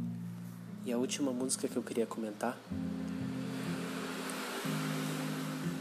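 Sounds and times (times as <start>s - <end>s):
speech: 1.0s - 3.0s
broadband road hiss: 1.3s - 5.7s
cars passing: 2.5s - 5.7s.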